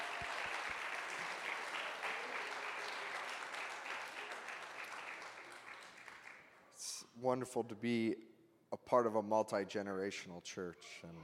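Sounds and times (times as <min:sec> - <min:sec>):
church audience applauding: 0:00.0 - 0:06.5
speech: 0:07.2 - 0:08.3, 0:08.9 - 0:11.2.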